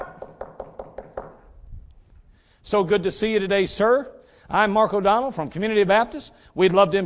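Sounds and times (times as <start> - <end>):
knocking on a door: 0.0 - 1.4
speech: 2.6 - 7.0.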